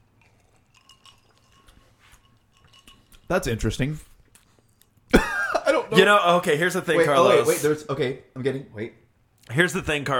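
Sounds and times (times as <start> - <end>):
drinking glasses clinking in a toast: 0.7 - 3.4
speech: 3.3 - 4.1, 5.9 - 10.1.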